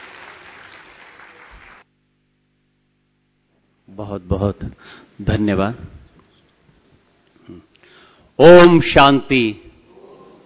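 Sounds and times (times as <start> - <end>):
crowd clapping loudly: 0.0 - 1.9
speech: 3.9 - 6.0, 7.5 - 7.8, 8.4 - 9.7.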